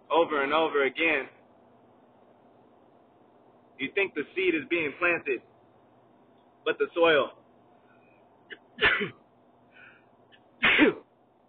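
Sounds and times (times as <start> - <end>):
low hum: 0.0 - 11.4
speech: 0.1 - 1.4, 3.8 - 5.5, 6.6 - 7.4, 8.8 - 9.2
person sneezing: 8.5 - 9.2, 10.6 - 11.1.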